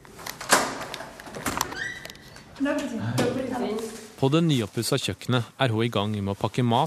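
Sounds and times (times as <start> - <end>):
movement in a room: 0.0 - 6.8
apartment door creaking open: 0.3 - 2.6
speech: 2.6 - 6.8.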